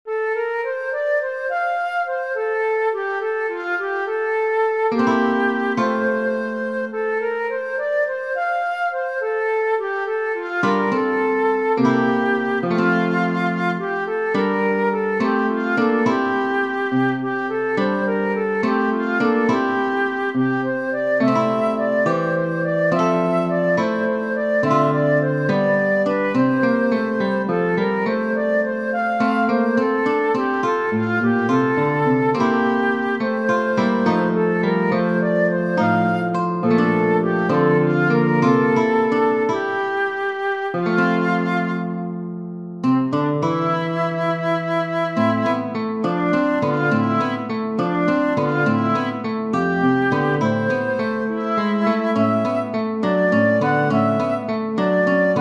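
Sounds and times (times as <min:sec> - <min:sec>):
flute: 0:00.0 - 0:55.3
guitar: 0:09.8 - 0:55.3.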